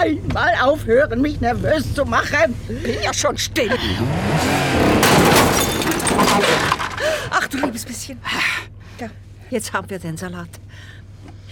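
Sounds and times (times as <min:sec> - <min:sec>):
speech: 0:00.0 - 0:05.8, 0:06.4 - 0:11.0
car reversing: 0:00.0 - 0:11.4
reversing car bumping into another car: 0:04.4 - 0:07.9.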